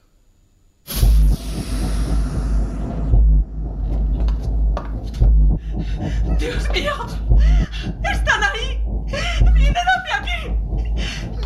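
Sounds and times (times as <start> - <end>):
loud explosion: 0.9 - 6.6
deep sustained rumble: 0.9 - 11.4.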